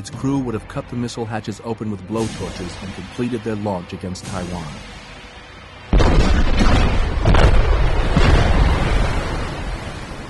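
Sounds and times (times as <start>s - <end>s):
speech: 0.0s - 5.0s
torpedoes exploding underwater beneath a submarine: 5.9s - 10.2s.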